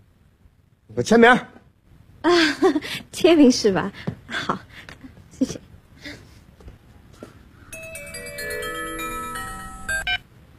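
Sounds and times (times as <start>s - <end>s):
speech: 0.9s - 1.6s, 2.2s - 5.6s
phone ringtone melody signalling an incoming call: 7.7s - 10.2s.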